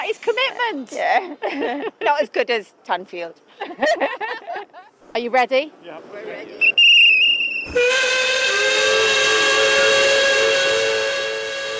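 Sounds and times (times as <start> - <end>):
speech: 0.1 - 6.8, 7.7 - 9.0
laughter: 1.2 - 2.2, 3.6 - 5.0
steam train whistle shrieking in a multi-tone wail: 6.7 - 11.7.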